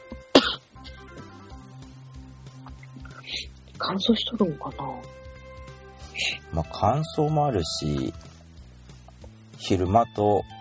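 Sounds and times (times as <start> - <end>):
person coughing with a cold-like cough: 0.3 - 1.0
speech: 3.4 - 5.2, 6.5 - 8.2, 9.7 - 10.5.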